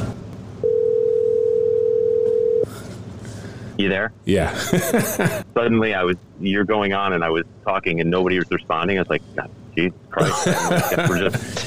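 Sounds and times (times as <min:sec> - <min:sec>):
telephone dial tone as a phone call is placed: 0:00.6 - 0:02.7
speech: 0:03.8 - 0:11.6
laughter: 0:04.4 - 0:05.5, 0:10.2 - 0:11.6.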